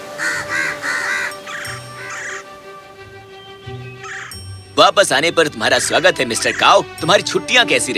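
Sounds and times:
crows cawing at a nest: 0.2s - 2.5s, 4.0s - 4.4s, 5.8s - 6.8s
faint tinkling: 1.3s - 2.3s, 4.3s - 5.6s
speech: 4.8s - 7.9s.

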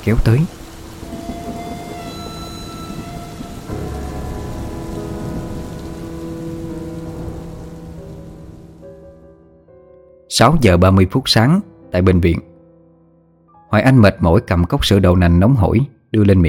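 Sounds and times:
speech: 0.0s - 0.6s, 10.4s - 12.5s, 13.7s - 16.4s
heavy rain pouring outside: 0.0s - 9.0s.

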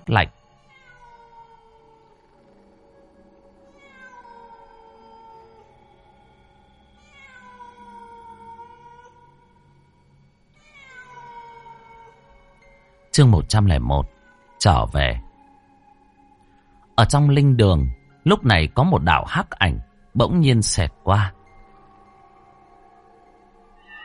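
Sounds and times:
speech: 0.1s - 0.4s, 13.2s - 15.2s, 17.0s - 21.4s
cats yowling mournfully: 0.5s - 13.1s, 14.0s - 16.4s, 21.4s - 24.0s.

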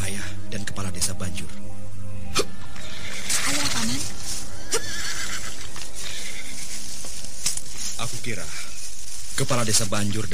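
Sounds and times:
hiss: 0.0s - 10.3s
horse neighing: 2.4s - 6.8s
speech: 9.4s - 10.3s.

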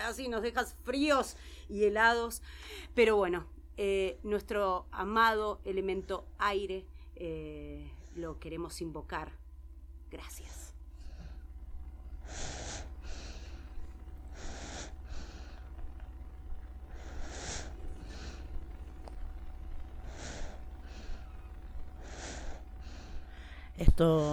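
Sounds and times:
low steady hum: 0.0s - 24.3s
speech: 0.1s - 9.4s, 10.1s - 10.7s, 12.3s - 12.8s, 23.8s - 24.3s
baby breathing softly: 12.1s - 19.2s, 19.8s - 23.8s.

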